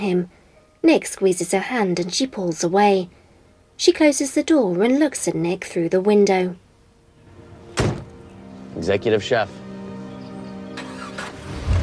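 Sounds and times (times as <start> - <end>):
speech: 0.0 - 3.2, 3.8 - 6.6, 8.8 - 9.6
truck pulling away with low rumbling roar: 10.0 - 11.8
truck engine starting on a sunlit street: 10.6 - 11.8.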